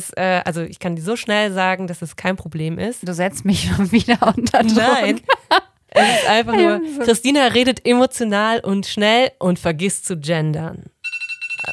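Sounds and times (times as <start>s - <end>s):
speech: 0.0s - 10.9s
laughter: 4.0s - 7.2s
electronic alarm clock beeping: 11.0s - 11.7s.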